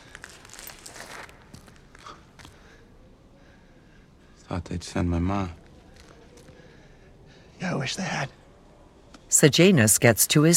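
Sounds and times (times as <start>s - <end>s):
person's footsteps creeping over loose gritty rubble in an arena: 0.0s - 2.6s
speech: 4.5s - 5.6s, 7.6s - 8.4s, 9.4s - 10.5s.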